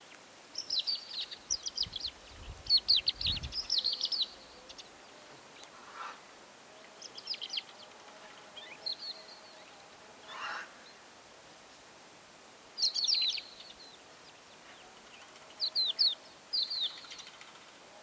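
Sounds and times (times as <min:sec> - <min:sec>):
crested lark calling: 0:00.6 - 0:06.2, 0:08.6 - 0:11.0, 0:12.8 - 0:17.7.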